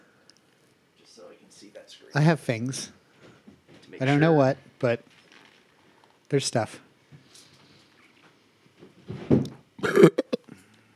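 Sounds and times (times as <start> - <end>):
speech: 1.2 - 3.0, 4.0 - 5.2, 6.3 - 6.8
guttural burp: 9.8 - 10.6.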